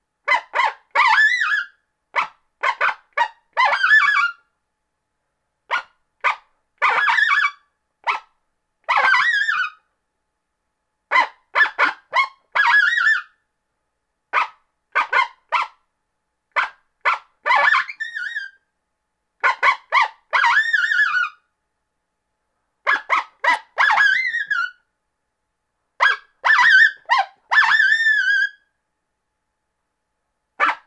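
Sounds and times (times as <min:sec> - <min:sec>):
coyote challenge bark: 0:00.3 - 0:04.4, 0:05.7 - 0:08.3, 0:08.9 - 0:09.8, 0:11.1 - 0:13.3, 0:14.3 - 0:15.8, 0:16.6 - 0:18.5, 0:19.4 - 0:21.4, 0:22.8 - 0:24.8, 0:26.0 - 0:28.6, 0:30.6 - 0:30.8.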